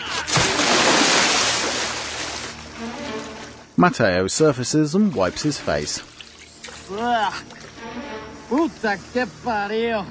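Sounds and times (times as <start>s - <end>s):
person losing their footing and falling backward into water: 0.0s - 2.6s
speech: 3.8s - 6.2s, 6.9s - 8.0s, 8.6s - 10.0s.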